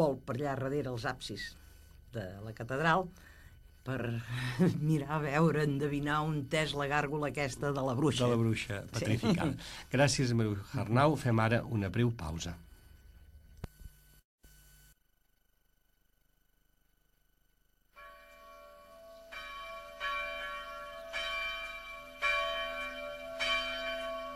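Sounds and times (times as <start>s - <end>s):
speech: 0.0s - 12.6s
church bells pealing as a theme tune: 18.0s - 24.3s.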